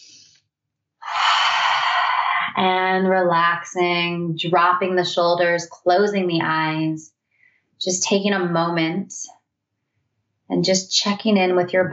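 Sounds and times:
deep breath in through the nose for a relaxation exercise: 0:01.0 - 0:02.5, 0:07.3 - 0:07.7
speech: 0:02.6 - 0:07.2, 0:07.8 - 0:09.4, 0:10.5 - 0:11.9.

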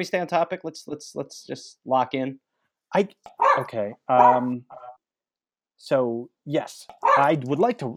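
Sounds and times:
speech: 0:00.0 - 0:04.9, 0:05.8 - 0:07.9
dog barking inside an apartment: 0:03.3 - 0:04.9, 0:07.0 - 0:07.4.

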